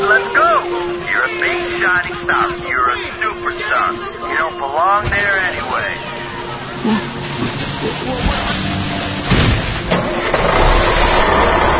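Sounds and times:
indistinct voices: 0:00.0 - 0:10.5
truck engine starting and revving as it pulls away: 0:06.3 - 0:11.7.

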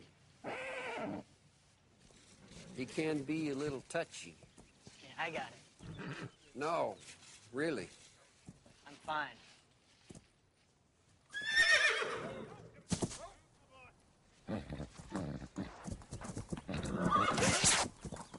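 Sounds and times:
horse neighing with a loud shrill whinny: 0:00.4 - 0:01.2, 0:05.8 - 0:06.4, 0:11.4 - 0:12.8, 0:16.7 - 0:17.8
horse snorting: 0:02.2 - 0:03.0, 0:05.8 - 0:06.4, 0:14.4 - 0:18.3
speech: 0:02.8 - 0:04.4, 0:05.2 - 0:08.0, 0:09.1 - 0:09.5.

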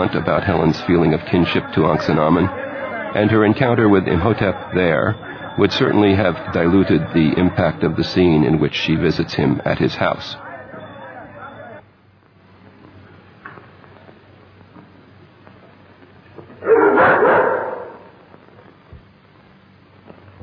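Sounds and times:
speech: 0:00.0 - 0:10.4
indistinct murmuring voices: 0:00.0 - 0:12.0, 0:16.4 - 0:18.4
frightened dog barking and yelping in a film scene: 0:16.6 - 0:18.1.

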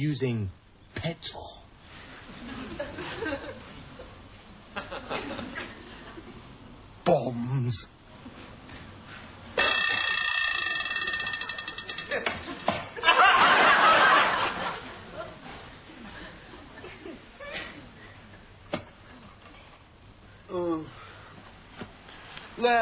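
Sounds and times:
speech: 0:00.0 - 0:01.6, 0:02.3 - 0:03.7, 0:04.8 - 0:05.8, 0:07.1 - 0:08.4
people chuckling: 0:02.3 - 0:06.6, 0:12.1 - 0:18.4
shrill alarm clock ringing loudly: 0:09.6 - 0:12.7.

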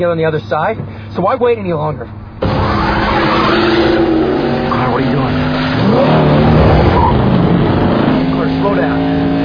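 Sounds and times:
speech: 0:00.0 - 0:02.2, 0:05.0 - 0:05.4
car engine roaring and climbing in pitch while speeding up: 0:02.4 - 0:09.4.

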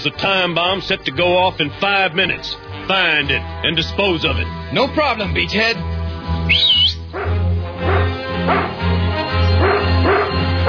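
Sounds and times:
speech: 0:00.0 - 0:05.9, 0:06.5 - 0:07.3
rising whistle: 0:06.4 - 0:07.1
dog barking: 0:07.1 - 0:08.9, 0:09.5 - 0:10.6.

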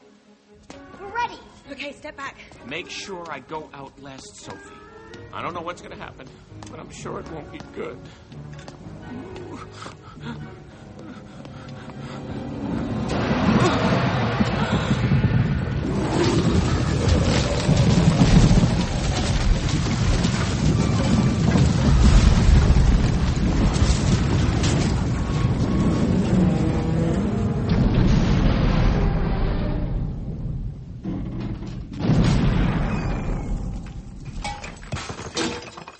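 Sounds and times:
speech: 0:01.3 - 0:10.5
castle collapsing with crashing and rumbling: 0:12.8 - 0:35.9
castle debris clattering and shattering: 0:15.8 - 0:26.4, 0:31.4 - 0:35.9.

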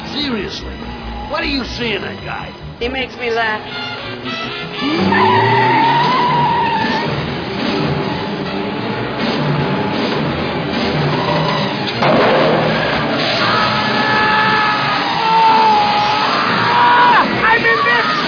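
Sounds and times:
rushing car engine and road noise: 0:00.0 - 0:14.0
tires screeching as a car skids on a slippery road: 0:00.0 - 0:18.2
speech: 0:00.2 - 0:05.6.

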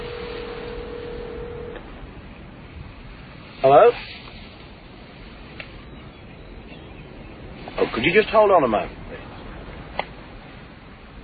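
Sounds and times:
telephone ringing tone from a call being placed to a parole officer: 0:00.0 - 0:01.8
hissy noisy static: 0:00.0 - 0:11.2
speech: 0:03.6 - 0:04.1, 0:07.8 - 0:09.0.

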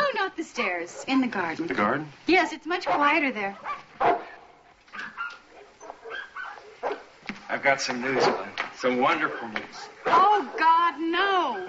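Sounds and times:
speech: 0:00.4 - 0:04.2, 0:07.5 - 0:11.6
dogs barking and yipping: 0:02.8 - 0:07.2, 0:08.0 - 0:11.6.

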